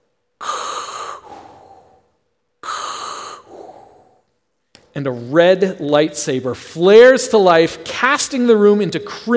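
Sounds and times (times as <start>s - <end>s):
raspy mechanical respirator breathing: 0.4s - 4.3s
speech: 5.0s - 9.3s.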